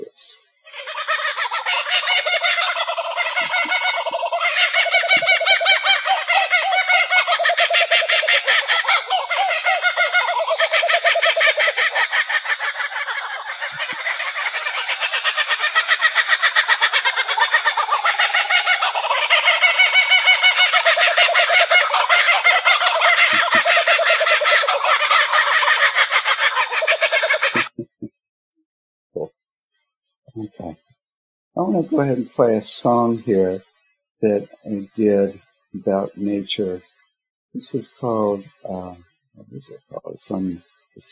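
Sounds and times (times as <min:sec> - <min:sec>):
chorus of kookaburras laughing: 0:00.0 - 0:28.0, 0:31.6 - 0:33.6, 0:34.2 - 0:36.8, 0:37.6 - 0:39.0
speech: 0:31.8 - 0:36.9, 0:37.5 - 0:41.0.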